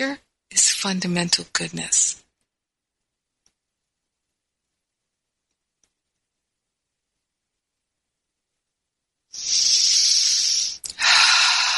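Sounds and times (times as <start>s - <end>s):
speech: 0.0s - 2.2s
long airy breath drawn through the nose or mouth: 9.4s - 11.7s.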